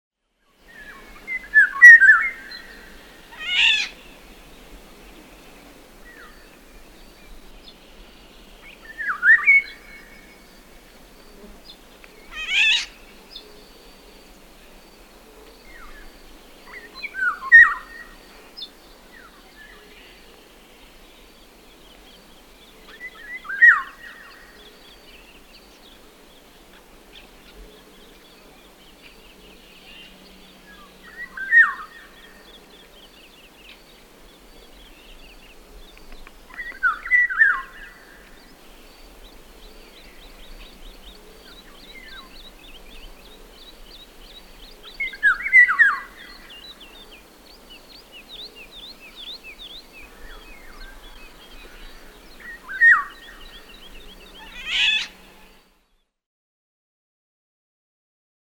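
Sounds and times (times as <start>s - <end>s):
golden oriole calling: 0.7s - 4.5s, 11.6s - 14.1s, 15.6s - 20.3s, 21.4s - 26.0s, 27.1s - 55.6s.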